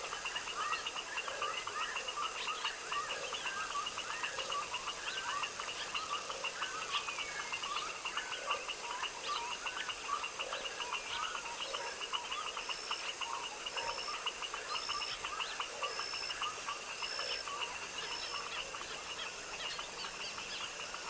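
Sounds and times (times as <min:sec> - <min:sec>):
dense background hiss: 0:00.0 - 0:21.0
foaming frog chorus in a tropical wetland swamp at dusk: 0:00.0 - 0:21.0.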